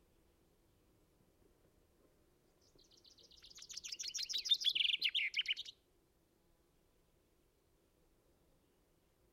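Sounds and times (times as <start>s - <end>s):
common chaffinch Fringilla coelebs singing: 2.6s - 5.8s.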